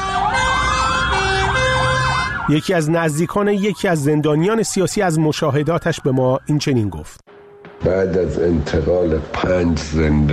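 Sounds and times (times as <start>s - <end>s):
fire engine sirens wailing: 0.0s - 7.2s
traffic and engines rumbling: 0.0s - 10.3s
speech: 2.5s - 10.3s.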